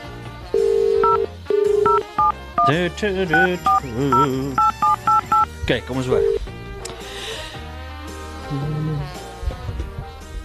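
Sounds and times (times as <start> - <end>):
steady phone tones: 0.5 - 5.5, 6.2 - 6.4
telephone keypad DTMF dialing tones: 0.6 - 2.7, 3.3 - 5.5
speech: 2.6 - 4.7, 5.7 - 6.4, 8.5 - 9.2.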